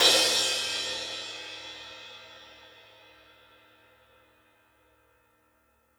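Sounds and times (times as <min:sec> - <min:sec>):
light crash cymbal one-shot: 0:00.0 - 0:02.8.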